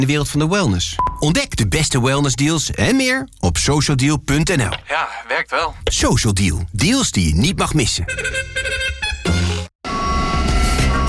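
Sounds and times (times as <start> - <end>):
speech: 0.0 - 9.0
truck reversing alarm beeps: 9.9 - 11.0.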